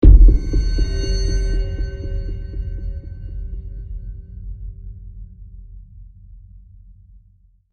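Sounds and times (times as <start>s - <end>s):
cinematic trailer hit: 0.0s - 4.0s.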